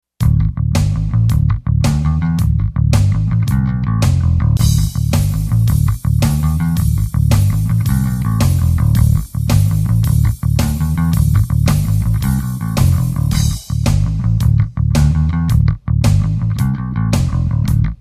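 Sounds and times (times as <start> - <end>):
bass drums: 0.2 - 18.0.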